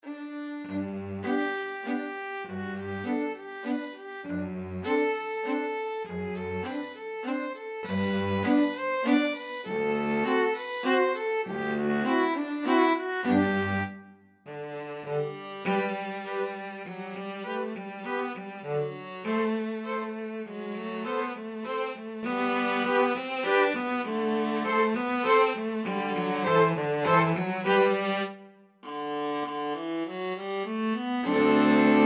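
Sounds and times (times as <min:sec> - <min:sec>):
string quartet playing a German dance: 0:00.0 - 0:13.9, 0:14.5 - 0:32.0.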